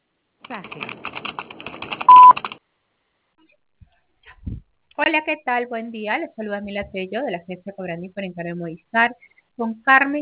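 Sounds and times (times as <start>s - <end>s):
speech: 0.5s - 1.2s, 5.0s - 10.2s
telephone clicks and beeps on a call line: 2.1s - 2.4s.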